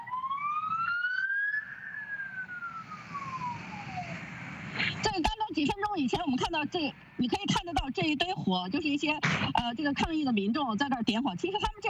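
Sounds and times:
police car siren wailing on a street during a protest: 0:00.0 - 0:04.8
speech: 0:05.6 - 0:11.8.

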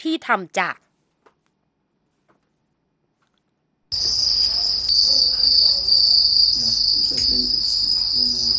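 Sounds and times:
speech: 0:00.0 - 0:00.9
crickets chirping on a cricket farm: 0:03.9 - 0:08.5.

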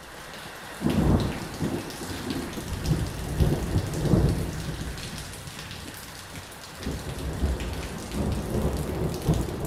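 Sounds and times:
heavy rain hammering corrugated iron roof: 0:00.0 - 0:09.6
low rumbles of thunder: 0:00.8 - 0:05.6, 0:06.8 - 0:09.6.

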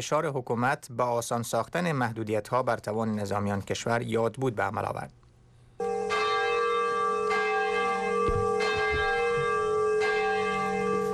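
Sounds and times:
speech: 0:00.0 - 0:05.2
large bell rung at an atomic bombing memorial ceremony in Nagasaki, Japan: 0:05.8 - 0:11.1.

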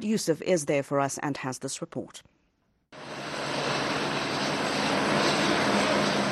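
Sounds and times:
speech: 0:00.0 - 0:02.4
helicopter roaring: 0:03.0 - 0:06.3.

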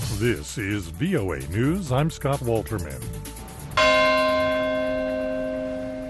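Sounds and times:
speech: 0:00.2 - 0:03.3
single strike of a large church bell: 0:03.8 - 0:06.0.

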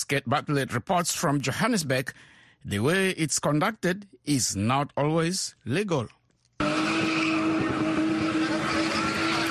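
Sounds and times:
speech: 0:00.0 - 0:06.7
tires squealing on a turbocharged car spinning in tight circles: 0:06.6 - 0:09.4
turbocharged car engine roaring during spinning in South Africa: 0:06.6 - 0:09.4.

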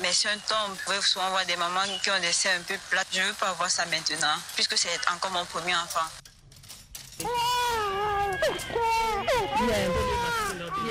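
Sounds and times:
speech: 0:00.1 - 0:06.2, 0:07.2 - 0:07.6, 0:08.4 - 0:10.8
three-month-old baby crying at a hospital: 0:07.2 - 0:10.8.

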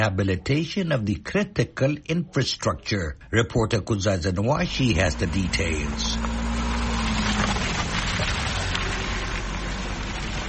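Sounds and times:
speech: 0:00.0 - 0:06.4
low engine rumble: 0:03.0 - 0:10.4
vehicles slowly driving over potholed roads in a Zimbabwean urban centre: 0:04.4 - 0:10.4.

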